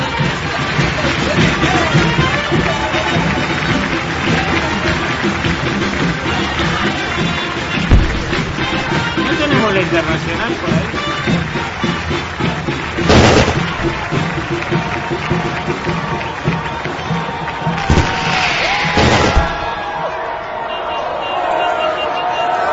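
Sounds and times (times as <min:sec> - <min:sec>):
crowd noise and talking voices: 0:00.0 - 0:22.7
May Day celebration fireworks bangs: 0:07.7 - 0:10.5, 0:12.9 - 0:14.8, 0:17.8 - 0:20.0
speech: 0:09.9 - 0:11.0.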